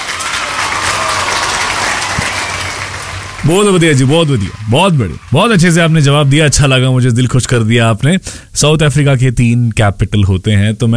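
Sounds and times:
sizable crowd clapping: 0.0 - 7.6
speech: 3.5 - 10.9.

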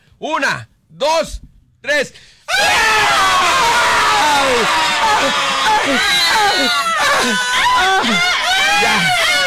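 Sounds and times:
speech: 0.2 - 3.8, 4.4 - 9.2
crowd of many voices shouting together in unison: 2.5 - 9.4.

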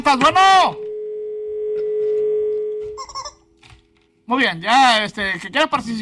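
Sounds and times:
speech: 0.0 - 0.8, 4.3 - 6.0
telephone dial tone of incoming call to a radio programme: 0.7 - 3.1.

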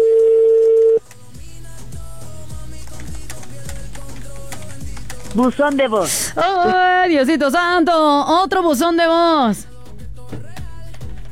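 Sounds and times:
ringback tone on an outgoing phone call: 0.0 - 1.0
speech: 5.4 - 9.7.

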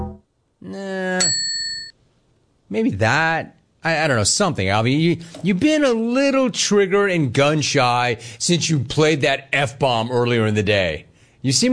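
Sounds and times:
sustained lower harmonic tone: 0.0 - 0.2
speech: 0.6 - 1.4, 2.7 - 11.7
bell ding: 1.2 - 1.9.

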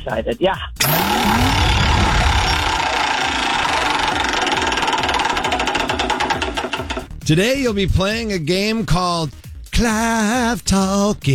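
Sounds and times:
speech: 0.0 - 2.2, 7.3 - 11.3
prize wheel being spun: 0.8 - 7.2.

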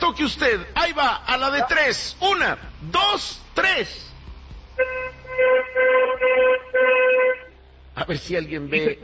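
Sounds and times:
speech: 0.1 - 4.1, 4.8 - 7.4, 8.0 - 9.0
car horn honking: 4.8 - 7.6.

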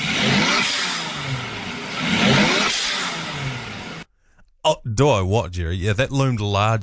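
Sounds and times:
turbocharged car engine revving hard: 0.0 - 4.4
speech: 4.8 - 6.8.

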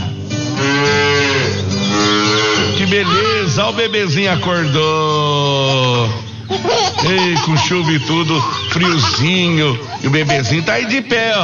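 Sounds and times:
dairy cow mooing at morning milking time on a rainy farm: 0.5 - 3.3
laughter: 2.8 - 11.4
speech: 2.9 - 11.4.

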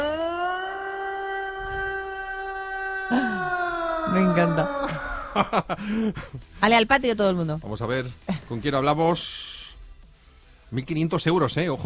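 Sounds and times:
siren sound effect wail: 0.0 - 5.5
speech: 3.1 - 3.4, 4.1 - 9.5, 10.7 - 11.8
laughter: 3.1 - 6.5.

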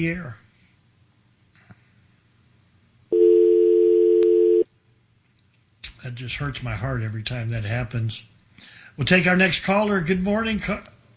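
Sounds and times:
speech: 0.0 - 0.4, 6.0 - 10.9
telephone dial tone on a call-in line: 3.1 - 4.7.

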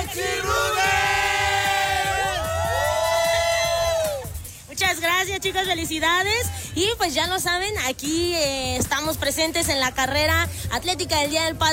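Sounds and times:
group of runners at a running race shouting a team cheer: 0.0 - 4.3
runners whooping: 0.6 - 4.4
speech: 5.4 - 11.7.

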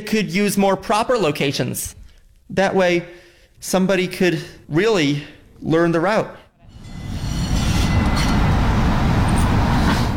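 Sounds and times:
speech: 0.0 - 6.4
faint metallic squeals: 6.6 - 10.0
subway train on the T network rumbling along the rails: 6.7 - 10.1.

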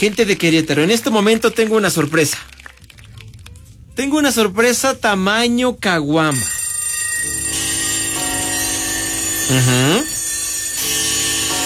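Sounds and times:
speech: 0.0 - 2.6, 4.0 - 6.6, 9.5 - 10.1
clocks ticking: 0.0 - 11.6
chorus of clocks ringing and chiming: 6.3 - 11.6.

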